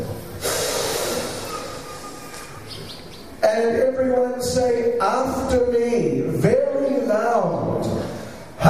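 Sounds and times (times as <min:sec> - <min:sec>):
crowd with hands raised drawing a deep breath together: 0:00.1 - 0:02.7, 0:08.0 - 0:08.6
speech: 0:03.5 - 0:08.0.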